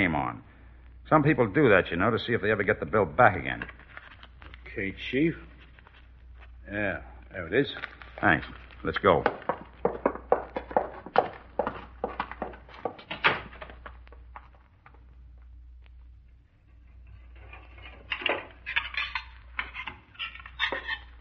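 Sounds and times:
speech: 0:00.0 - 0:00.5, 0:01.1 - 0:03.8, 0:04.8 - 0:05.5, 0:06.7 - 0:09.5
steady low hum: 0:00.0 - 0:21.1
dishes and cutlery clattering: 0:17.2 - 0:21.1.

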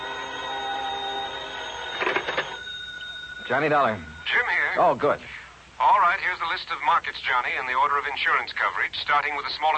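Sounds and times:
payphone bell ringing in a phone booth: 0:00.0 - 0:04.8
speech: 0:03.5 - 0:09.7.

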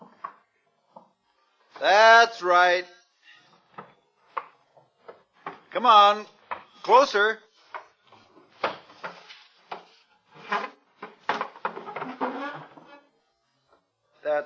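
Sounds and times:
speech: 0:01.8 - 0:03.0, 0:05.8 - 0:07.4
wooden chair shoved and bumped up to a door: 0:07.6 - 0:13.0.

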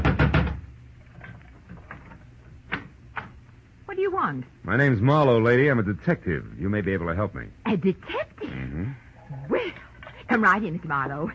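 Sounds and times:
loud knocking on a house front door: 0:00.0 - 0:00.7
speech: 0:04.1 - 0:09.0, 0:10.3 - 0:11.3.

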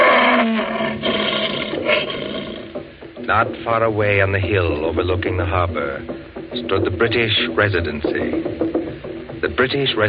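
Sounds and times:
lion roaring: 0:00.0 - 0:02.8
speech: 0:03.3 - 0:08.7, 0:09.4 - 0:10.0.

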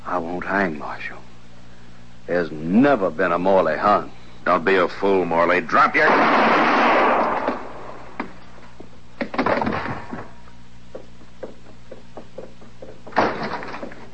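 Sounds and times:
speech: 0:00.2 - 0:01.2, 0:02.3 - 0:06.5
gunshots in a Western frontier confrontation: 0:06.0 - 0:08.0
knocking sounds: 0:10.9 - 0:14.1.

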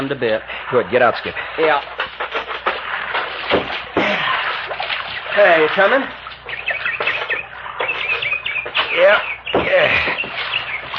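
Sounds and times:
speech: 0:00.0 - 0:02.0, 0:05.4 - 0:06.2, 0:09.0 - 0:10.2
birds chirping and warbling: 0:00.0 - 0:10.9
steady outdoor noise: 0:00.0 - 0:10.9
rising and falling bird squawks: 0:04.3 - 0:10.9.

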